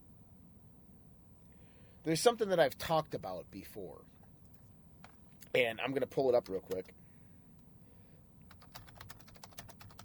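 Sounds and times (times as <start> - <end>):
low hum: 0.0 - 10.0
speech: 2.0 - 4.2, 5.5 - 7.0
rapid computer keyboard typing: 5.0 - 5.2, 6.4 - 7.0, 8.5 - 10.0.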